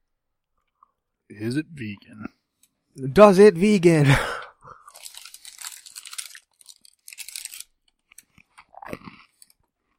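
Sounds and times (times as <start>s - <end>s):
speech: 1.3s - 2.4s, 3.0s - 4.4s
crunchy chewing of a crisp cookie: 4.8s - 9.9s.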